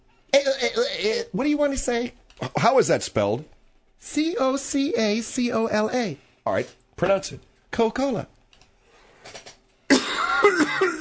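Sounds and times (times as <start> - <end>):
speech: 0.8 - 8.4
person coughing: 9.9 - 10.9.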